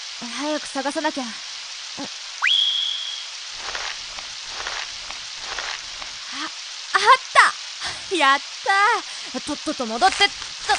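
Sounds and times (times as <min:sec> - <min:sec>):
steady rain beside a muddy bog: 0:00.0 - 0:10.7
speech: 0:00.2 - 0:02.2, 0:08.1 - 0:10.7
rising whistle-like tone: 0:02.4 - 0:03.3
soft irregular patter and drips: 0:03.5 - 0:08.0, 0:08.6 - 0:10.7.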